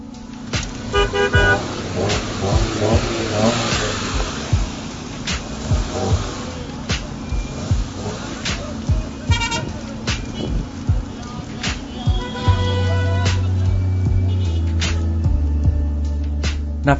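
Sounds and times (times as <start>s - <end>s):
car engines rumbling and revving in a traffic jam: 0.0s - 16.9s
car horns honking in stationary cars: 0.6s - 15.0s.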